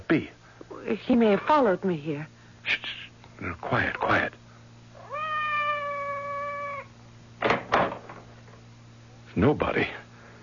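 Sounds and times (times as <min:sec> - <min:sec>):
speech: 0:00.1 - 0:04.4, 0:09.4 - 0:10.0
cat meowing outside a door: 0:05.0 - 0:06.9.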